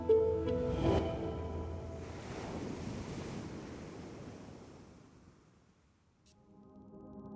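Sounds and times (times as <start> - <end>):
ocean waves breaking: 0.0 - 5.8.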